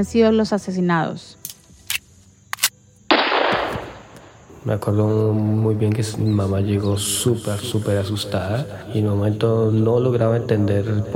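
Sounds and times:
speech: 0.0 - 1.4, 4.6 - 11.1
gunshots: 2.6 - 4.4
heavier blast with rolling echo: 3.1 - 4.4.

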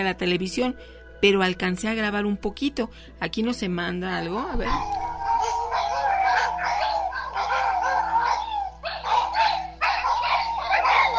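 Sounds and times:
speech: 0.0 - 5.1
several dogs barking restlessly at a pirul tree: 4.2 - 11.1.

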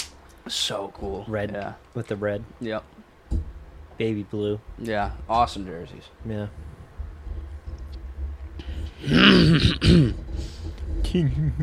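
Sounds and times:
low steady hum: 0.1 - 11.6
speech: 0.5 - 3.0, 4.0 - 6.7, 9.8 - 10.2, 11.1 - 11.6
man clearing his throat with a rough gravelly rasp: 9.0 - 10.2.

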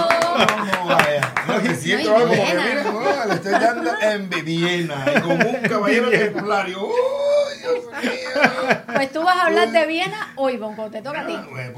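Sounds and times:
applause from a few people: 0.0 - 1.9
people laughing: 0.0 - 10.6
speech: 0.4 - 0.7, 1.8 - 11.7.

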